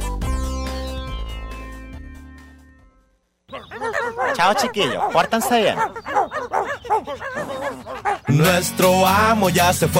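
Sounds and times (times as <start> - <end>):
dog barking rapidly: 3.5 - 8.5
speech: 4.1 - 9.9.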